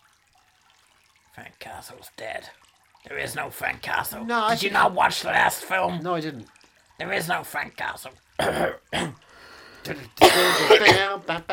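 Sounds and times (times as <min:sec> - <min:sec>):
speech: 0:01.4 - 0:09.2, 0:09.8 - 0:11.5
run of loud raspy coughs: 0:08.4 - 0:09.2, 0:09.8 - 0:11.5.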